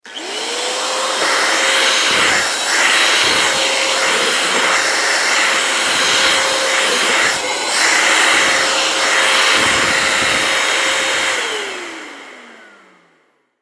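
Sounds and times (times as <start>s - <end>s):
vacuum cleaner cleaning the floor: 0.0s - 13.4s.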